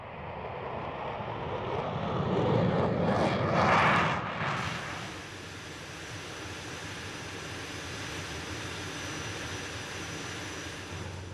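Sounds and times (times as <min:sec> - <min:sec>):
Concorde supersonic jet airliner engines roaring: 0:00.1 - 0:11.3.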